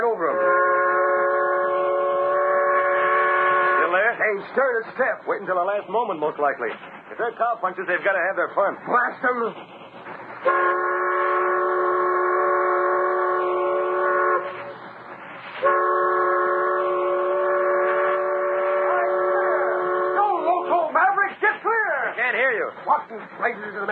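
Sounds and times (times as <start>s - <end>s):
approaching train rumbling: 0.0s - 23.8s
supply train whistle blasts: 0.2s - 4.0s, 10.4s - 14.7s, 15.6s - 20.4s
speech: 4.4s - 9.7s, 10.4s - 10.7s, 22.8s - 23.8s.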